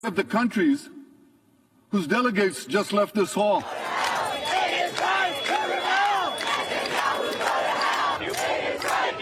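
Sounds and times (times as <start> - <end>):
speech: 0.0 - 1.0, 1.9 - 3.9
protest crowd shouting angrily in outrage: 3.6 - 9.2.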